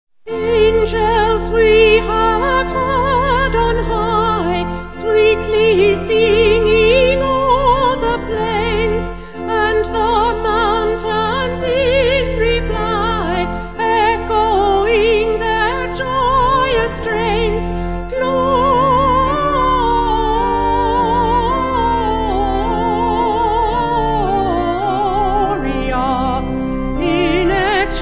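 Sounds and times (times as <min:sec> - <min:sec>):
organ: 0:00.3 - 0:27.9
vocals: 0:00.3 - 0:27.9.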